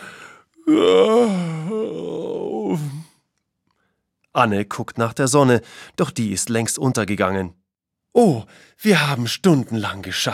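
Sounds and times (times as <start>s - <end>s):
several people yawning aloud: 0.6s - 3.1s
speech: 4.4s - 10.3s.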